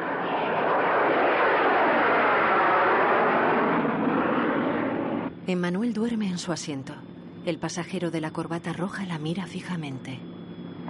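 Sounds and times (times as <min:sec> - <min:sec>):
airplane climbing in flight: 0:00.0 - 0:05.5, 0:10.2 - 0:10.8
speech: 0:05.5 - 0:10.3.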